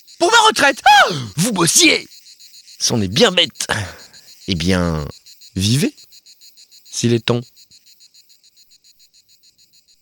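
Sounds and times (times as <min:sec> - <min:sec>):
cicadas chirping: 0:00.0 - 0:09.9
speech: 0:00.2 - 0:02.2, 0:02.8 - 0:06.0, 0:07.0 - 0:07.5.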